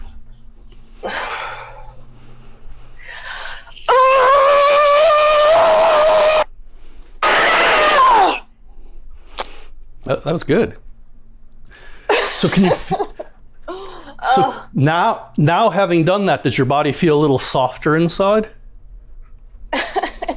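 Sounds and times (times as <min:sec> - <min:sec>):
soft breathy vocal sounds: 0:01.0 - 0:03.9
person shouting over a phone call: 0:03.8 - 0:06.5, 0:07.2 - 0:08.4, 0:14.2 - 0:14.7
speech: 0:10.2 - 0:10.8, 0:12.4 - 0:13.0, 0:14.4 - 0:18.6
laughter: 0:12.1 - 0:13.4.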